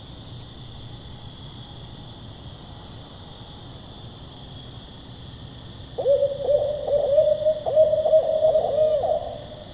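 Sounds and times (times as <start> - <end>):
steady hiss: 0.0 - 9.7
recorded barred owl hooting call: 6.0 - 9.7.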